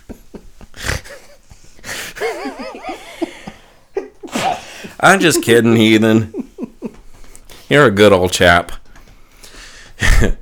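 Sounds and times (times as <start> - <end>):
breathy laughter: 0.0 - 7.3
woman sneezing: 4.3 - 4.8
speech: 5.0 - 6.4, 7.7 - 8.8.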